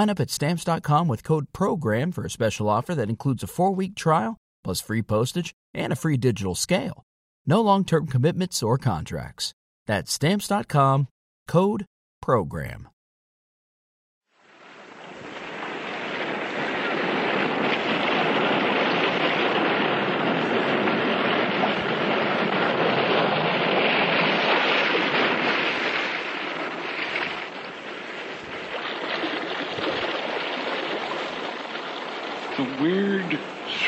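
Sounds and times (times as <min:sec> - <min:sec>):
speech: 0:00.0 - 0:12.9, 0:32.8 - 0:33.8
restless sea waves surging inside a cave: 0:14.3 - 0:33.8.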